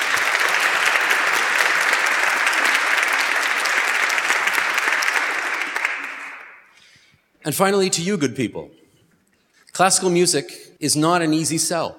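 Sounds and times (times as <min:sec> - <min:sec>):
applause from a large audience: 0:00.0 - 0:06.7
speech: 0:07.5 - 0:08.8, 0:09.8 - 0:11.9.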